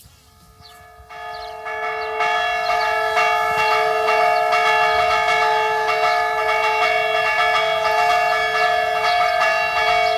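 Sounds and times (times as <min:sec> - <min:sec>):
church bell in a bell tower ringing the fire call: 0:00.3 - 0:10.1.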